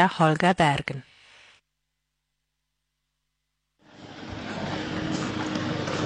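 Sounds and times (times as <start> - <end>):
speech: 0.0 - 1.1
busy traffic noise at outdoor event grounds: 3.8 - 6.0.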